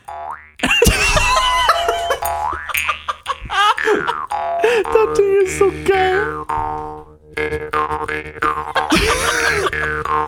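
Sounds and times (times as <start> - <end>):
jaw harp twanging with wah-like swoops: 0.0 - 5.1, 5.9 - 10.2
laughter: 0.6 - 4.8, 8.7 - 10.2
speech: 7.6 - 10.2.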